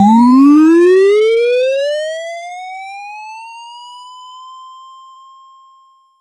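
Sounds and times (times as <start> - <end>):
power up jingle: 0.0 - 1.0.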